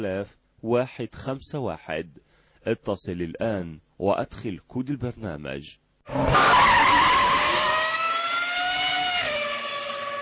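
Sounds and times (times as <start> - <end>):
speech: 0.0 - 6.8
racing car engine roar in a mobile racing video game: 6.1 - 10.2
racing car tire screeches in a mobile racing video game: 6.1 - 10.2.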